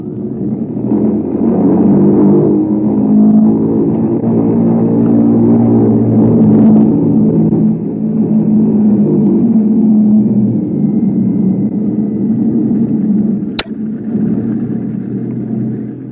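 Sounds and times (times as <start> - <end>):
bomber piston engines revving during engine run-up at the head of the runway: 0.0 - 16.0
brief sharp click: 13.5 - 13.8.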